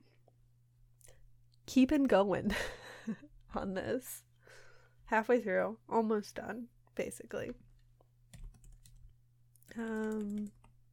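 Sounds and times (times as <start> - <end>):
speech: 1.8 - 7.6, 9.7 - 10.6
typing on a computer keyboard: 8.3 - 10.8.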